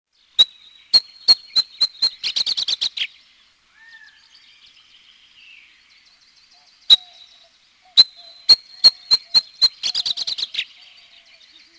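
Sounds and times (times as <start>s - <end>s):
Abert's Towhee calls: 0.4s - 3.1s, 6.6s - 11.0s.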